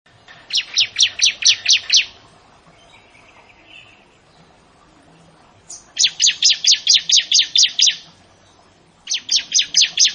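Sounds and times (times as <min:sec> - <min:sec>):
Prinia song of sharp downslurred chirps: 0:00.1 - 0:10.1.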